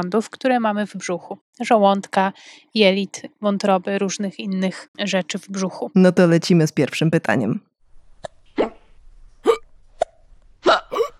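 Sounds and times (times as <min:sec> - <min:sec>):
speech: 0:00.0 - 0:07.7
sharp gulping hiccups: 0:08.2 - 0:11.1.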